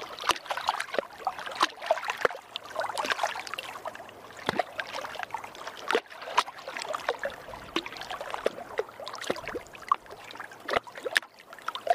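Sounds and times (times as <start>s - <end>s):
lake water lapping with small splashes and gurgles: 0.0s - 11.9s.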